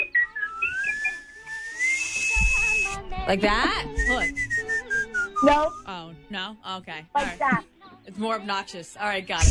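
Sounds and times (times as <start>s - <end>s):
person whistling tunelessly: 0.0s - 3.1s, 3.9s - 6.1s
speech: 3.3s - 4.4s, 5.4s - 9.4s.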